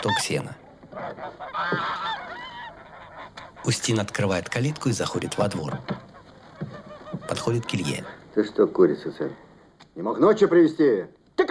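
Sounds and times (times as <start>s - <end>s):
speech: 0.0s - 0.6s, 3.6s - 6.0s, 7.3s - 9.4s, 10.0s - 11.2s
geese honking as they are driven out of a barn: 0.0s - 8.4s.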